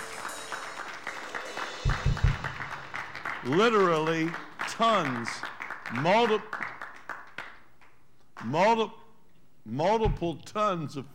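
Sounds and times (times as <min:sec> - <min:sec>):
audience applauding in a roomy space: 0:00.0 - 0:07.9
speech: 0:03.4 - 0:06.6, 0:08.4 - 0:09.0, 0:09.6 - 0:11.1.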